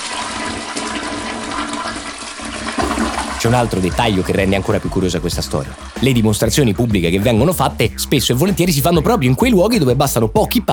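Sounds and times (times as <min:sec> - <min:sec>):
toilet flushing with loud rush of water: 0:00.0 - 0:06.9
speech: 0:03.4 - 0:10.7.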